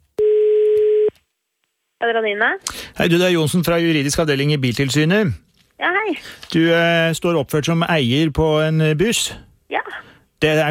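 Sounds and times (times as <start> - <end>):
telephone call tone while an outgoing call is placed: 0.2 - 1.1
speech: 2.0 - 10.7.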